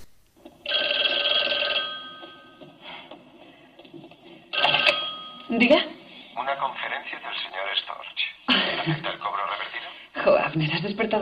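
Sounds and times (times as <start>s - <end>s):
telephone ringing with a bright buzzy electronic trill: 0.6s - 3.5s, 4.1s - 5.8s
speech: 5.5s - 8.0s, 10.5s - 11.1s
laughter: 8.5s - 9.3s.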